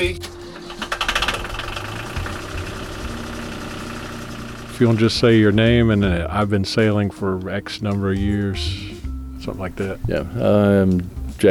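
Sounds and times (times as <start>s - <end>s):
boat engine idling after being started: 0.0s - 7.0s
speech: 4.8s - 8.9s, 9.5s - 11.4s.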